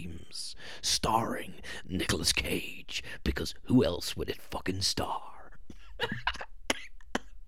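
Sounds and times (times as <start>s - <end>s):
man speaking in a put-on voice: 0.0s - 5.5s
speech: 0.3s - 5.3s
man coughing in a harsh fit: 5.9s - 7.4s.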